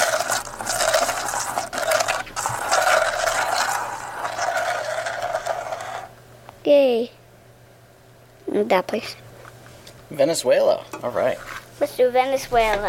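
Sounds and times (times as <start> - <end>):
globe spinning on its stand with a scraping whir: 0.0 - 6.2
speech: 8.6 - 9.2, 10.1 - 12.8.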